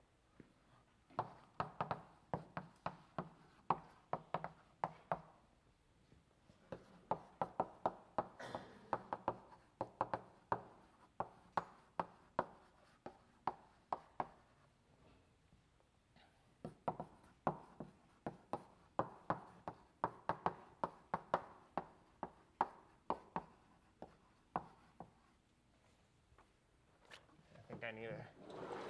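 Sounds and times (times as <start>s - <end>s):
chalk tapping and scraping on a blackboard drawing a diagram during a lecture: 1.1s - 5.4s, 6.6s - 14.6s, 16.6s - 25.4s
speech: 27.8s - 28.8s.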